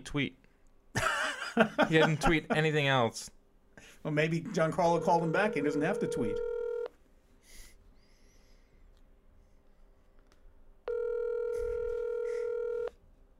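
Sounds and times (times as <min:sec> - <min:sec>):
speech: 0:00.0 - 0:00.4, 0:01.6 - 0:06.5
ringback tone from an outgoing phone call: 0:04.9 - 0:06.9, 0:10.9 - 0:12.9.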